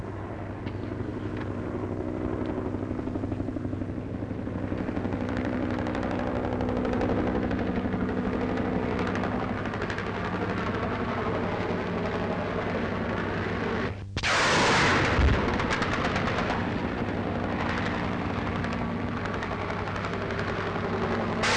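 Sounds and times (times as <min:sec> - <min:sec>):
droning engine: 0:00.0 - 0:21.5
M60 machine guns firing during a Vietnam War search-and-clear operation: 0:14.2 - 0:21.5.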